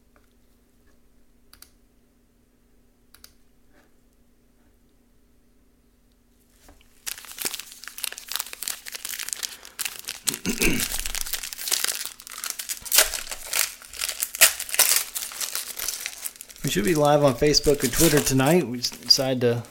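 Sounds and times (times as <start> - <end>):
foil 2023 Donruss trading card pack wrapper crinkling and ripped open: 6.6 - 19.7
speech: 16.7 - 19.7.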